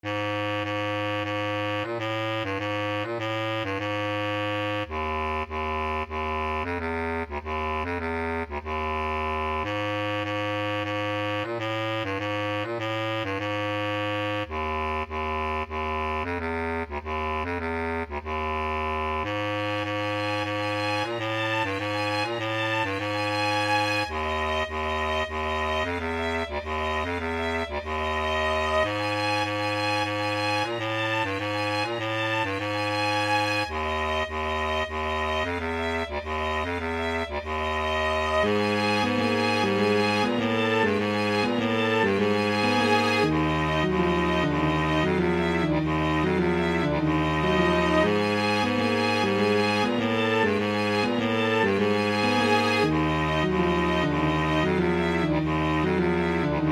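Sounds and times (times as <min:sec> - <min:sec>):
classical music: 0:00.0 - 0:56.7.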